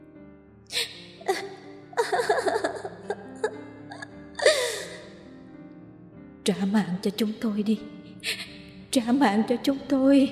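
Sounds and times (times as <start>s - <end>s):
ghostly crying carried on the wind: 0.7s - 5.2s
speech: 1.3s - 2.6s, 6.5s - 10.2s
ghostly shrill laughter carried on the wind: 2.0s - 5.0s.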